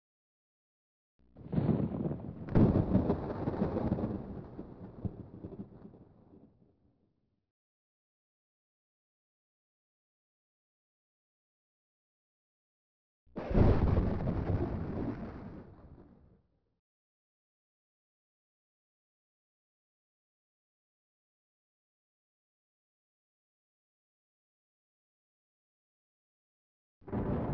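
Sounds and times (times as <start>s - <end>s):
thunder in a storm: 1.4s - 6.8s, 13.4s - 16.3s, 27.1s - 27.5s.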